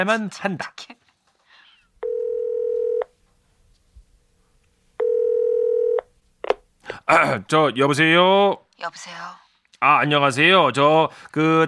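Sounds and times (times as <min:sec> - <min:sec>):
speech: 0:00.0 - 0:01.0, 0:07.1 - 0:11.6
phone ringback tone: 0:02.0 - 0:03.1, 0:05.0 - 0:06.0.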